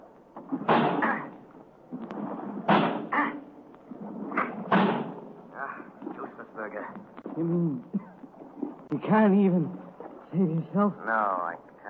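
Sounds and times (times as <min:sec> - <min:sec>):
man's shoulder battering the heavy door of a locked vault: 0:00.5 - 0:01.3, 0:02.5 - 0:03.1, 0:04.5 - 0:05.3
speech: 0:07.4 - 0:08.0, 0:09.0 - 0:11.6.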